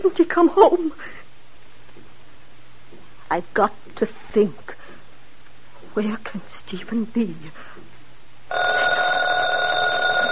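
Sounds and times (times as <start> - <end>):
speech: 0.4 - 1.2, 3.3 - 4.7, 6.0 - 7.8
telephone bell ringing with a buzzing trill: 8.5 - 10.3.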